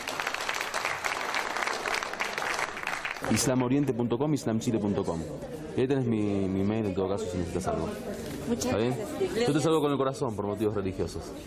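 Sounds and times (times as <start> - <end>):
crowd applauding: 0.0 - 3.7
speech: 3.3 - 11.4.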